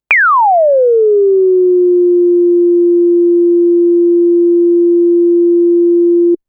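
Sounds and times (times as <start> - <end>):
synthesizer with self-oscillating VCF: 0.1 - 6.4.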